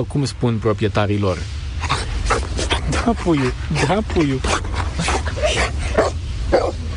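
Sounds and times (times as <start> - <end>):
speech: 0.0 - 1.6, 3.0 - 6.8
steady low rumble: 0.0 - 6.9
dog whimpering and giving short strained yelps: 4.6 - 6.9.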